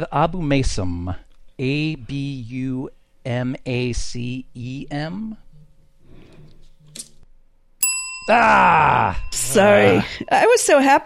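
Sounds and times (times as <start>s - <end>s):
speech: 0.0s - 5.4s, 8.3s - 11.0s
bell ringing: 7.8s - 11.0s.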